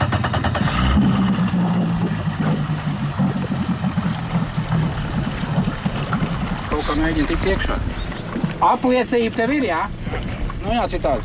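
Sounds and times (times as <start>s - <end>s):
police motorboat engine droning on a lake: 0.0s - 11.2s
water splashing and rushing around the motorboat hull: 0.0s - 11.2s
speech: 7.0s - 8.0s, 8.6s - 11.2s.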